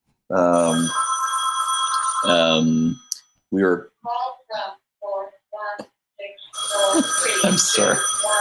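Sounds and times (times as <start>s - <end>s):
short voice-like burst: 0.3s - 0.9s, 2.3s - 3.8s, 7.0s - 8.0s
speech: 0.3s - 1.0s, 2.2s - 4.2s, 6.9s - 8.4s
phone ringing in a house: 0.6s - 2.6s, 6.2s - 8.4s.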